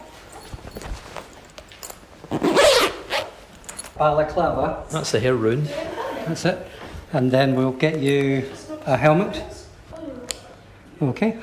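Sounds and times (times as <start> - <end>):
soft rustles and clicks of thick fabric: 0.0 - 4.0
heavy zipper of a protective suit pulled up: 2.2 - 3.5
speech: 4.0 - 9.5, 11.0 - 11.4
laughter: 5.6 - 6.8.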